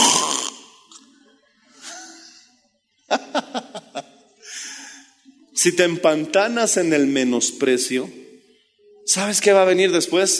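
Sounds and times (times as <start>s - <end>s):
person imitating snoring: 0.0s - 0.6s
laughter: 3.1s - 4.3s
speech: 5.6s - 8.2s, 9.1s - 10.3s.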